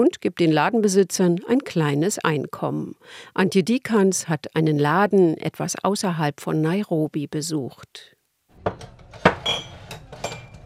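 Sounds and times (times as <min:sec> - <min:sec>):
speech: 0:00.0 - 0:09.7
second-hand cups and plates clinking as they are arranged in a shop: 0:08.7 - 0:10.6.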